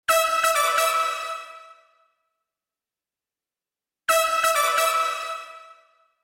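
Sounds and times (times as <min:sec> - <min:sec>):
brass through Lexicon 300 stairwell reverb: 0:00.1 - 0:02.3, 0:04.1 - 0:06.2.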